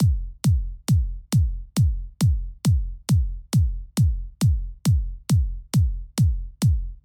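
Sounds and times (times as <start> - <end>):
kick drum mix: 0.0 - 7.0.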